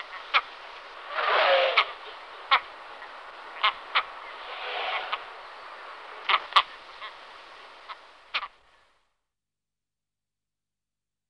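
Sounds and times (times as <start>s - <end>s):
great skua Stercorarius skua uttering harsh barking notes: 0.0s - 7.2s
soft hissing background: 0.0s - 9.1s.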